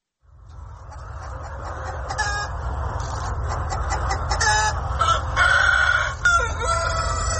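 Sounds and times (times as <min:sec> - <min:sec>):
low rumbling noise: 0:00.2 - 0:07.3
Vietnamese dragon chicken rooster clucking: 0:00.5 - 0:07.3
Vietnamese dragon chicken rooster crowing: 0:04.4 - 0:07.3.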